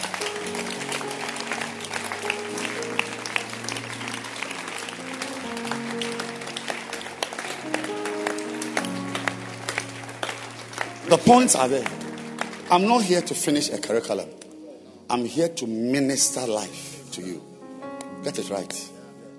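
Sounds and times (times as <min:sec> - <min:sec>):
large church audience clapping: 0:00.0 - 0:14.2
speech: 0:11.1 - 0:12.0, 0:12.7 - 0:14.4, 0:15.1 - 0:17.5, 0:18.2 - 0:18.9.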